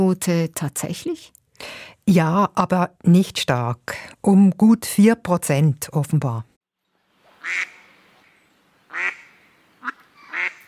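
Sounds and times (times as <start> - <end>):
speech: 0.0 - 6.5, 7.4 - 7.7
duck quacking: 7.4 - 7.9, 8.9 - 10.6.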